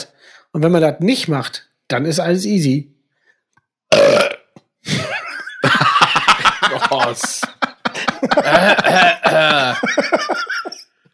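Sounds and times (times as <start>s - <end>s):
speech: 0.5s - 3.0s, 3.9s - 4.3s, 6.9s - 7.5s, 8.2s - 10.4s
loud low burp: 3.9s - 4.6s
snickering breathy laughter: 4.9s - 10.9s.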